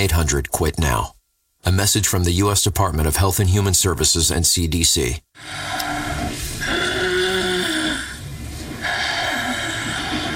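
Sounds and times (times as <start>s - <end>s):
speech: 0.0s - 6.8s
snoring: 5.4s - 10.3s.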